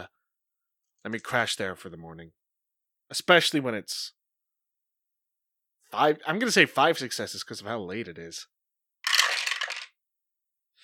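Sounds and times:
speech: 0:01.0 - 0:02.4, 0:03.1 - 0:04.2, 0:05.9 - 0:08.6
dice rolling across a surface during a tabletop role-playing game: 0:09.0 - 0:10.0.

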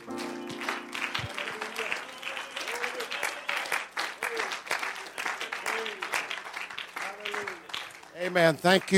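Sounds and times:
room full of people clapping their hands: 0:00.0 - 0:08.9
voices and cheers: 0:01.2 - 0:06.2
speech: 0:08.2 - 0:08.9.

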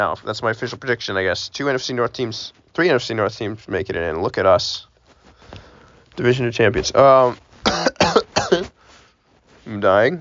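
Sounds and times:
speech: 0:00.0 - 0:04.9, 0:06.2 - 0:08.8, 0:09.7 - 0:10.1
person coughing harshly: 0:07.6 - 0:08.8.

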